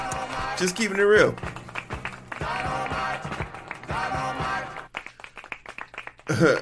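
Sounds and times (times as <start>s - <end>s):
people clapping: 0.0s - 6.6s
speech: 0.6s - 1.6s, 6.4s - 6.6s.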